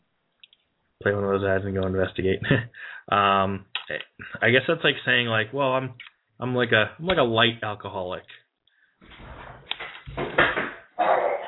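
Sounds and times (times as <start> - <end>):
speech: 1.0 - 8.4
door opening: 9.0 - 10.8
scraping as neighbors move things around outside: 9.0 - 10.8.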